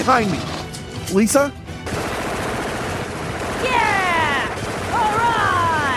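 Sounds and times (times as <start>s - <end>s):
speech: 0.0s - 0.5s, 1.1s - 2.0s
rapid gunfire at attacking drones: 1.8s - 5.9s.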